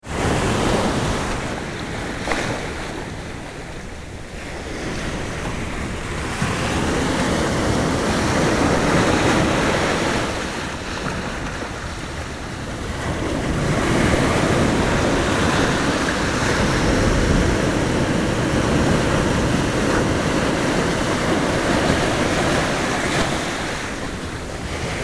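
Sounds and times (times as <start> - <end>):
shorebreak waves breaking on shore: 0.0 - 25.0.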